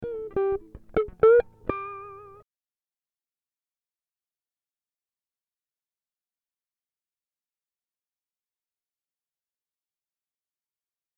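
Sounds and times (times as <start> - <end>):
guitar riffs in E minor: 0.0 - 2.4.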